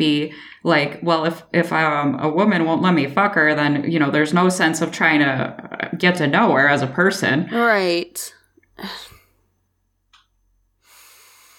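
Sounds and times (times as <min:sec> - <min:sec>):
speech: 0:00.0 - 0:09.1
deep breath taken to calm down: 0:10.8 - 0:11.5.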